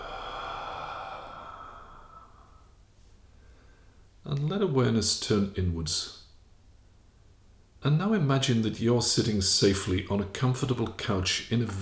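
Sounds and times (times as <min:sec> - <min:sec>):
long deep breath exhaled during a guided relaxation exercise: 0:00.0 - 0:02.8
speech: 0:04.3 - 0:06.2, 0:07.8 - 0:11.8.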